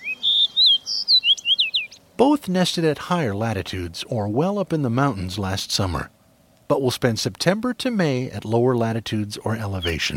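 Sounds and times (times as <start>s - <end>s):
autumn migrant Fox Sparrow singing in October morning sunlight: 0.0s - 2.1s, 9.8s - 10.1s
speech: 2.2s - 10.1s.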